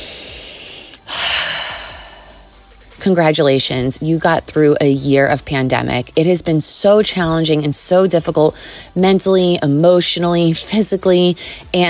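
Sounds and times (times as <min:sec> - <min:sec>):
deep breath taken in and let out: 0:00.0 - 0:02.9
speech: 0:03.0 - 0:11.8.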